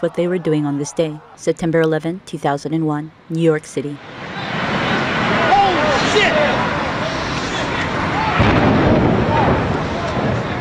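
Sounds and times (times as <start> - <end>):
speech: 0.0 - 4.2, 6.1 - 6.8
continuous noisy outdoor ambience: 0.0 - 10.5
explosion of hijacked plane hitting tower: 4.2 - 10.5.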